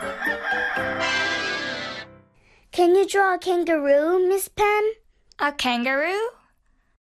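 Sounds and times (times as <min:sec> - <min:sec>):
rooster crowing: 0:00.0 - 0:02.0
speech: 0:02.8 - 0:06.4.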